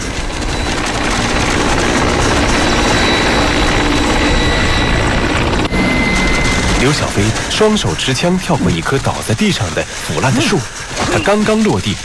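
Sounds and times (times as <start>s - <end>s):
helicopter droning overhead with rotor and engine roar: 0.0s - 12.0s
speech: 6.8s - 12.0s.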